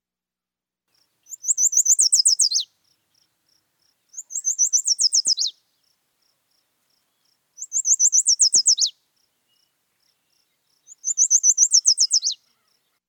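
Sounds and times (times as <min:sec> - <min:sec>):
yellow warbler singing: 0:01.2 - 0:03.2, 0:04.1 - 0:05.6, 0:07.1 - 0:12.8.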